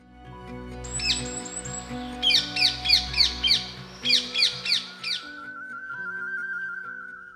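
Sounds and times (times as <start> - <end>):
steady musical backdrop: 0.0 - 7.3
parakeet chirping: 1.0 - 5.3.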